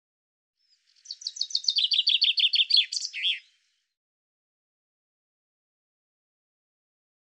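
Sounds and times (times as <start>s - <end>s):
common chaffinch singing: 0.6s - 3.7s.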